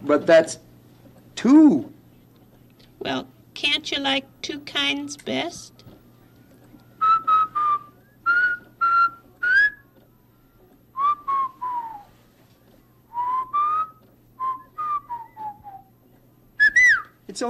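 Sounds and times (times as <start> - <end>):
speech: 0.0 - 0.7, 1.4 - 2.0, 3.0 - 5.8
person whistling a simple tune: 7.0 - 9.8, 11.0 - 12.2, 13.1 - 15.9, 16.6 - 17.2.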